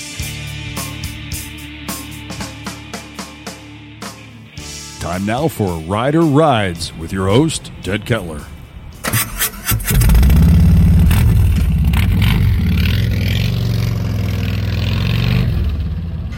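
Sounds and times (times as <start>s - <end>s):
speech: 5.0s - 8.5s
Harley-Davidson Road King motorcycle engine cranking, idling and revving: 8.9s - 16.3s.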